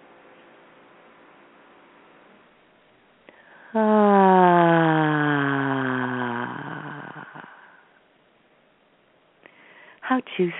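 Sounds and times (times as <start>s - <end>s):
long loud voiced exhale in a deep breathing exercise: 3.3s - 8.0s
speech: 3.7s - 4.1s, 10.4s - 10.5s.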